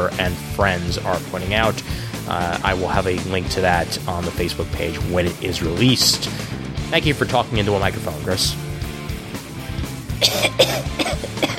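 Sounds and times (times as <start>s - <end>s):
speech: 0.0s - 8.6s
man coughing into a microphone: 10.2s - 11.5s.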